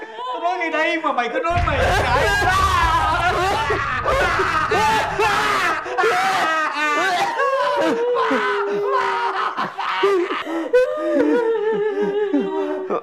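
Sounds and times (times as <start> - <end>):
speech: 0.7 - 2.7
low rumble: 1.5 - 6.6
laughter: 1.5 - 13.0
person crying and whimpering: 5.3 - 13.0.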